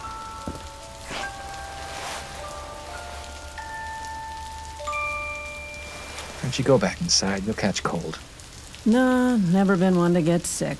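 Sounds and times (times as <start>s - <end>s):
soft sustained musical tones: 0.0s - 7.0s
steady rain pattering on a hard street surface: 0.0s - 10.7s
speech: 6.5s - 10.7s.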